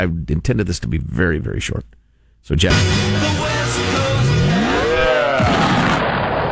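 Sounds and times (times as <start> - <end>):
speech: 0.0 - 3.5
rising and falling swoops: 3.9 - 6.4
explosion sound effect jingle: 4.5 - 6.4.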